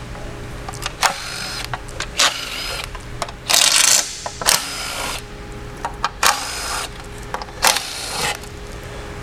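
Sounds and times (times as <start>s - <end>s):
screws being removed from a transmission oil pan with mechanical whirring: 0.9s - 5.3s, 6.2s - 7.0s, 7.6s - 8.6s.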